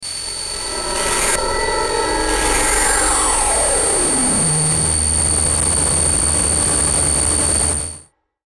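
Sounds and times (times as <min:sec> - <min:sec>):
dark descending high-frequency distortion glitch stutter: 0:00.0 - 0:08.0.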